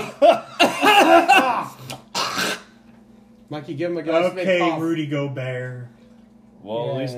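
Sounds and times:
harsh rough voiced coughs: 0.0 - 2.8
speech: 3.5 - 6.0, 6.6 - 7.1.

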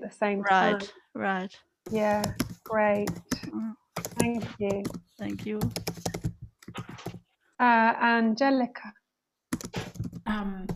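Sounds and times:
speech: 0.1 - 6.1, 7.6 - 9.0, 10.3 - 10.7
typing on a computer keyboard: 1.9 - 7.2, 9.5 - 10.7.

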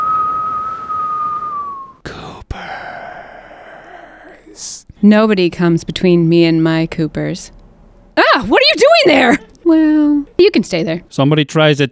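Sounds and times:
person whistling one long steady note: 0.0 - 2.0
speech: 4.6 - 7.6, 8.4 - 11.9
laughter: 8.2 - 11.1.

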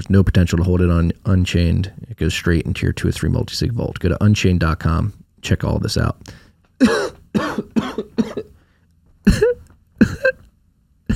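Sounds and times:
speech: 0.0 - 8.3
harsh throat clearing and coughing: 6.8 - 8.6, 9.2 - 10.4.

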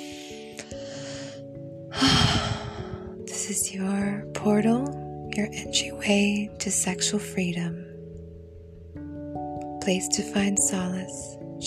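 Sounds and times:
deep breath during a guided relaxation exercise: 0.0 - 3.2
speech: 3.5 - 7.8, 9.8 - 11.6.

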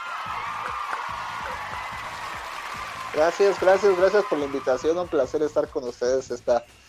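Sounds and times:
crowd applause welcoming a guest: 0.0 - 5.2
people cheering: 0.0 - 6.2
speech: 3.2 - 6.8.

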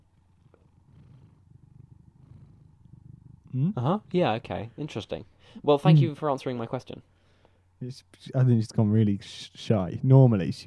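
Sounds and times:
orange cat purring: 0.0 - 6.2
speech: 3.6 - 7.2, 7.8 - 10.6.

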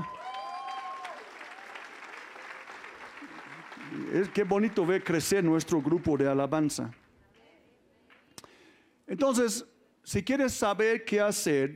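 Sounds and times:
high whistle or cheer: 0.0 - 1.6
audience applause: 0.0 - 7.0
speech: 4.1 - 7.0, 9.2 - 11.7.

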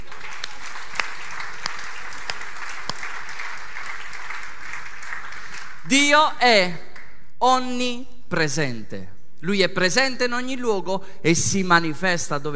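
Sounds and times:
audience applause: 0.0 - 5.9
speech: 5.9 - 12.5.

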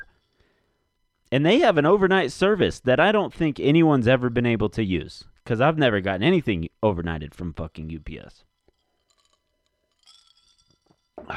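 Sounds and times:
speech: 1.3 - 8.5
crisp crunching of ice being chewed: 8.4 - 11.3.

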